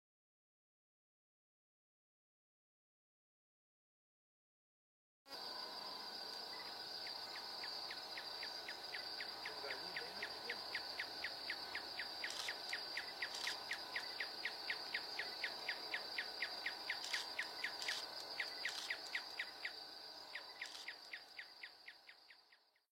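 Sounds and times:
antbird flock singing: 5.4 - 22.9.

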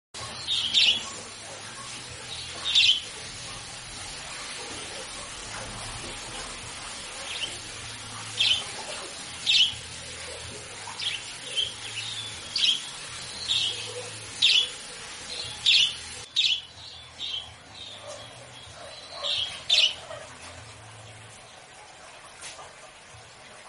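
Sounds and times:
white budgerigar singing: 0.2 - 3.6, 7.1 - 20.2.

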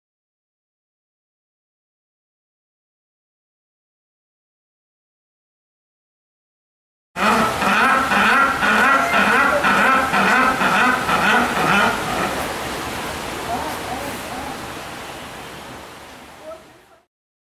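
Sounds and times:
penguin call: 7.2 - 12.5.

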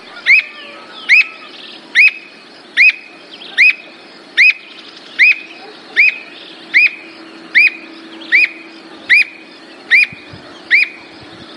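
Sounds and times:
squirrel cuckoo singing clear arched whistles: 0.0 - 11.2
faint steady hum: 0.0 - 11.5.

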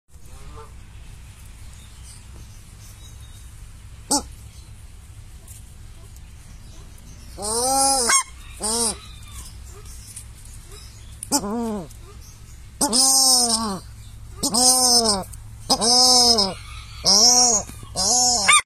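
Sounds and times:
paradise shelduck calling: 4.1 - 4.3, 7.4 - 9.0, 12.8 - 18.6.

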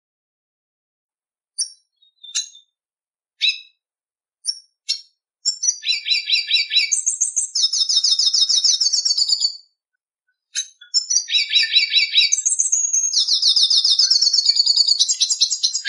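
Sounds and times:
red siskin fast twittering song with buzzy trills: 1.6 - 2.7, 4.4 - 9.6, 10.5 - 15.8.

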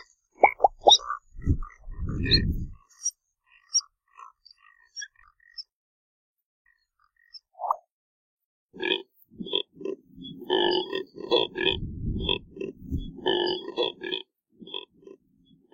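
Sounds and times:
Neotropic cormorant producing deep rasping grunts: 0.0 - 3.0, 8.8 - 15.2
speech: 2.2 - 2.7.

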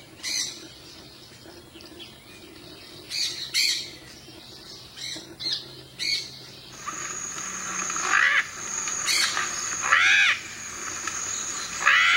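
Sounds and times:
Yellow-collared macaw screeching: 6.8 - 12.1
high insect drone: 6.8 - 12.1.

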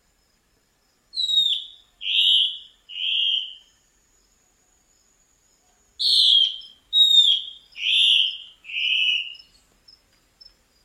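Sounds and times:
Black-spotted bare-eye song of whistled notes stepping down in pitch: 1.1 - 3.7, 6.0 - 9.6.

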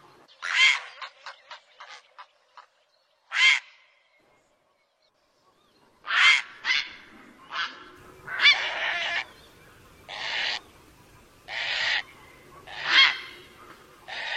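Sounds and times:
great blue heron producing hoarse honking squawks: 0.4 - 2.0, 3.3 - 3.8, 6.0 - 9.3, 10.1 - 10.7, 11.5 - 14.3.

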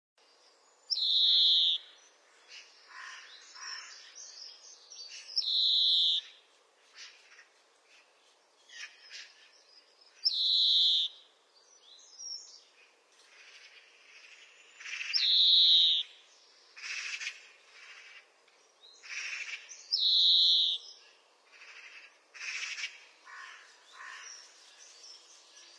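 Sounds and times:
European greenfinch soft twittering notes: 0.9 - 6.4, 8.7 - 12.6, 13.6 - 18.2, 18.8 - 24.4.

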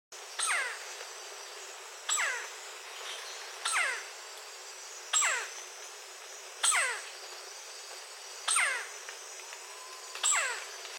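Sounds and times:
red-bellied woodpecker calling: 0.4 - 0.8, 2.0 - 4.2, 5.1 - 5.6, 6.6 - 7.1, 8.4 - 9.0, 9.7 - 10.8.

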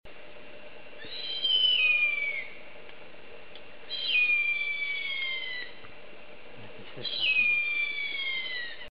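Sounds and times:
harpy eagle calling: 1.0 - 2.7, 3.9 - 5.9, 6.9 - 8.9.

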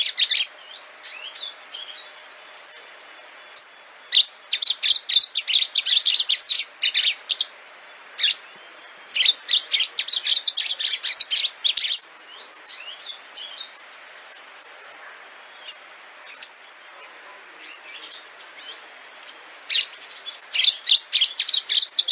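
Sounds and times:
orange-fronted yellow finch singing high busy chirps: 0.0 - 22.0.

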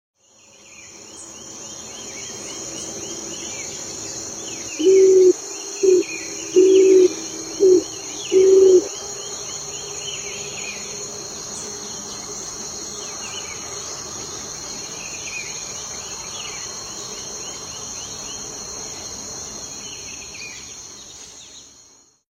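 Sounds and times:
Columba trocaz pigeon singing: 4.8 - 9.0.

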